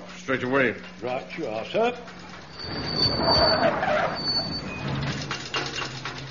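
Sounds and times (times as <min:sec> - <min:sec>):
speech: 0:00.3 - 0:04.4
van engine failing with its big end gone, rumbling and grinding: 0:02.1 - 0:06.2.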